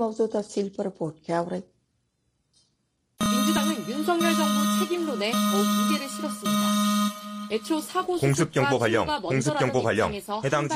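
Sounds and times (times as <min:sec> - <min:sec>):
speech: 0:00.0 - 0:01.8, 0:03.5 - 0:10.7
air raid warning alarm broadcast on South Korean television: 0:03.2 - 0:08.2
busy sound: 0:03.2 - 0:09.9.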